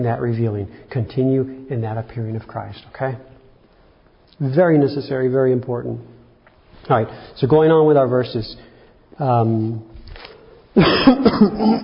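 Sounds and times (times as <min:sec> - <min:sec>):
speech: 0:00.0 - 0:03.3, 0:04.4 - 0:06.2, 0:06.8 - 0:11.8
single short voiced cough: 0:10.8 - 0:11.8.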